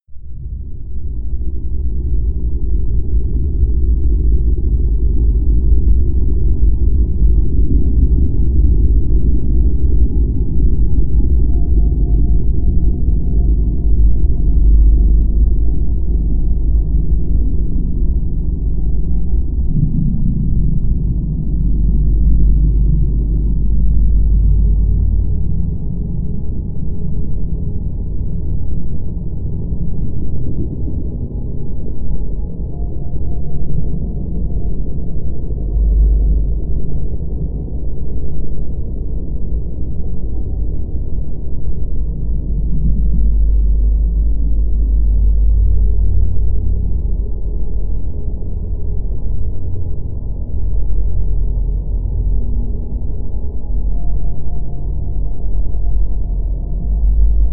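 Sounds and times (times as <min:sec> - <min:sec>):
drone: 0:00.1 - 0:57.5.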